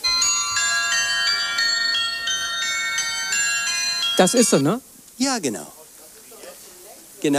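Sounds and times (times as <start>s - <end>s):
carillon of tuned bells playing a melody: 0.0s - 4.8s
speech: 4.2s - 5.8s.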